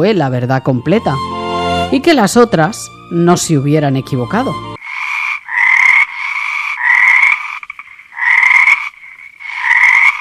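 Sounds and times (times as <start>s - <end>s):
speech: 0.0s - 1.3s, 1.9s - 4.8s
chorus of frogs croaking: 4.8s - 10.1s.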